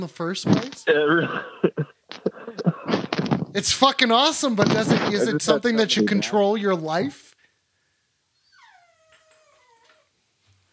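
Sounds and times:
speech: 0.0s - 2.0s, 3.6s - 7.2s
laughter: 0.9s - 3.8s, 4.5s - 6.3s
dog whimpering in a room: 8.4s - 10.1s.

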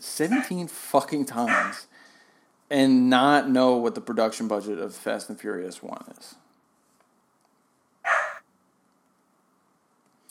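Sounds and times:
speech: 0.0s - 2.0s, 2.7s - 6.4s
quiet background hum: 0.0s - 10.2s
dog barking: 0.3s - 0.5s, 1.5s - 1.8s, 8.1s - 8.4s.

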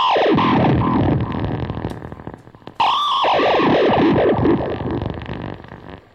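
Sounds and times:
guitar through effects pedal producing distorted synth-like tone: 0.0s - 6.1s.

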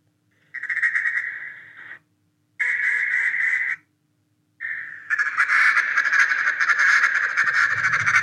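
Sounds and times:
duck call blown in nasal hen quacks: 2.6s - 3.8s, 4.6s - 8.2s.

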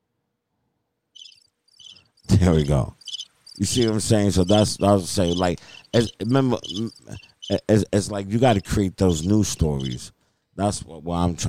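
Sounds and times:
high shrill cricket chirping: 1.2s - 7.8s, 8.4s - 10.0s
speech: 2.4s - 3.0s, 3.6s - 11.4s.

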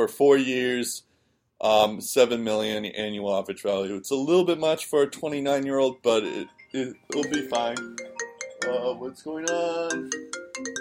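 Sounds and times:
speech: 0.0s - 10.8s
mobile phone ringtone with electronic beeping melody: 6.2s - 10.8s.

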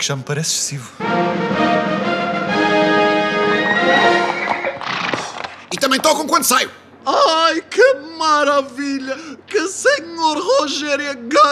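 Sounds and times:
speech: 0.0s - 2.6s, 5.8s - 11.5s
horses whinnying inside a hotel: 3.5s - 5.7s.

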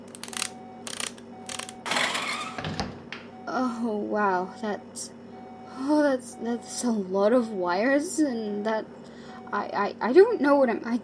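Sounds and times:
wrench ratcheting while unbolting a metal maintenance hatch: 0.0s - 1.8s
speech: 3.6s - 5.2s, 5.8s - 11.0s.

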